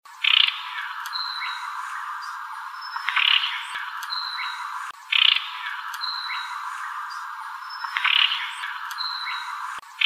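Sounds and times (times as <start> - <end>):
Sinaloa wren calls: 0.1 - 10.0.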